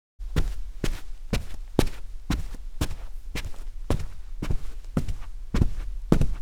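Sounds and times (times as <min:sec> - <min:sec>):
footsteps on carpet: 0:00.2 - 0:06.4.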